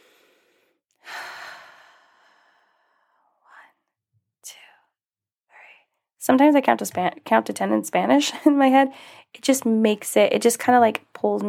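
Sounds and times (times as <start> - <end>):
person taking a deep breath: 0.0 - 3.6, 8.9 - 9.3
speech: 6.3 - 11.4.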